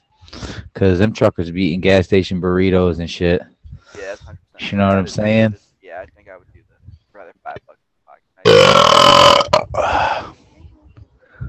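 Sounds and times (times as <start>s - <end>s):
speech: 0.8s - 6.1s, 8.5s - 10.4s
loud drawn-out burp: 8.4s - 10.2s.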